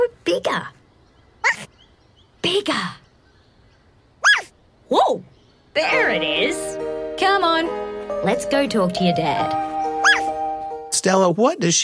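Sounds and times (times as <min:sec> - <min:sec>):
speech: 0:00.3 - 0:00.8, 0:01.4 - 0:01.8, 0:02.4 - 0:03.0, 0:04.9 - 0:09.8, 0:11.0 - 0:11.8
person imitating dog barks: 0:10.0 - 0:10.3.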